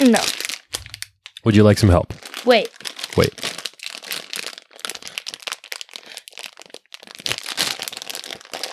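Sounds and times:
plastic bag of gummy bears crinkling and ripping as it is torn open: 0:00.0 - 0:01.2, 0:02.1 - 0:08.7
dense crackly plastic rustling: 0:00.0 - 0:01.5, 0:02.1 - 0:08.7
speech: 0:01.5 - 0:03.6.

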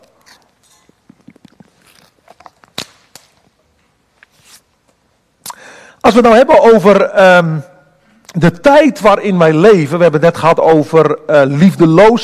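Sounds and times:
person sipping water: 0:00.0 - 0:02.7
wet mouth clicks: 0:00.1 - 0:02.8
speech: 0:06.1 - 0:07.7, 0:08.4 - 0:12.2.

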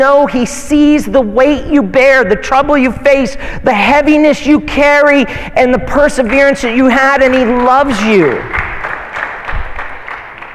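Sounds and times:
speech: 0:00.0 - 0:08.6
audience clapping: 0:06.2 - 0:10.5.

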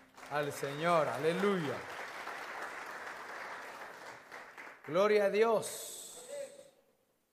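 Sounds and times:
congregation clapping hands in sustained applause: 0:00.0 - 0:05.5
speech: 0:00.3 - 0:02.0, 0:04.8 - 0:05.9.

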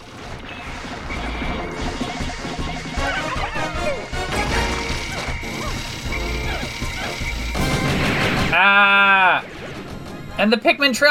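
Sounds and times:
video game machine gun firing: 0:00.0 - 0:08.8
busy video game sounds: 0:00.0 - 0:11.1
high warbling tone: 0:00.1 - 0:10.4
speech: 0:10.4 - 0:11.1.

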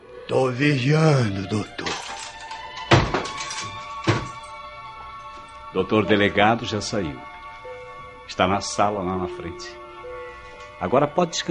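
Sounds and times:
speech: 0:00.3 - 0:01.8, 0:05.8 - 0:07.3, 0:08.3 - 0:09.8, 0:10.8 - 0:11.5
heavy metal jail cell door slamming shut: 0:02.0 - 0:04.4.

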